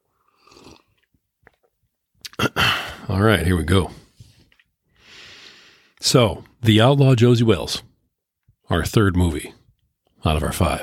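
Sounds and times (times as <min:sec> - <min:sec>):
slurping sip of a drink: 0:00.1 - 0:01.6
swallow: 0:00.1 - 0:03.0
speech: 0:03.1 - 0:04.0, 0:06.1 - 0:07.9, 0:08.7 - 0:09.6, 0:10.2 - 0:10.8.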